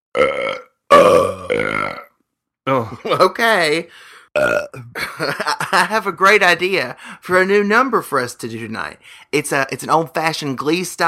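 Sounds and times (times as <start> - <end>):
person burping: 0.1 - 3.2, 4.3 - 5.3
speech: 2.9 - 11.0.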